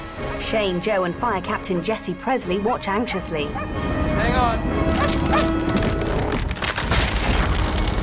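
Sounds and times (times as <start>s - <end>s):
speech: 0.4s - 5.6s
stone ledge cracking open and crumbling beneath a dog's feet: 4.9s - 8.0s.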